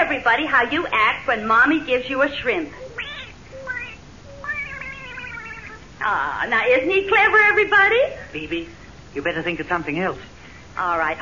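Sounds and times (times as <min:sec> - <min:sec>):
speech: 0:00.1 - 0:03.0, 0:06.0 - 0:11.2
small pet cat meowing: 0:02.8 - 0:05.9.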